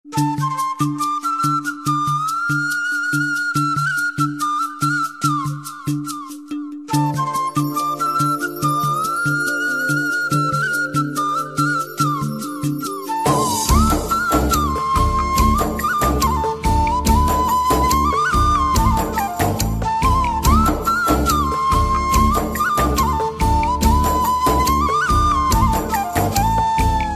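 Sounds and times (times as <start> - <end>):
flute background music from a movie as a ringtone: 0.0 - 27.1.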